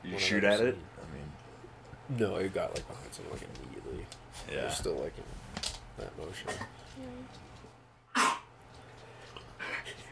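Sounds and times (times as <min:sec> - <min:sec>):
speech: 0:00.2 - 0:00.9, 0:02.1 - 0:05.4, 0:06.0 - 0:07.5
single small short cough: 0:08.1 - 0:08.5.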